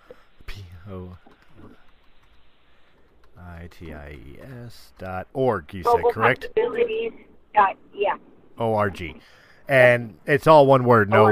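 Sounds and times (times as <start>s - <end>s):
low hiss: 0.0s - 11.3s
speech: 0.9s - 1.3s, 3.4s - 11.3s
typing on a computer keyboard: 1.3s - 4.0s.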